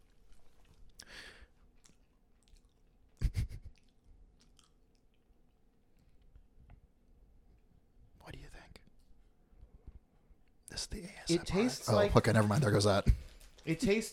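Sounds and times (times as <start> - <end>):
chewing candy corn with crunchy bites: 0.0 - 6.3
speech: 10.8 - 14.1.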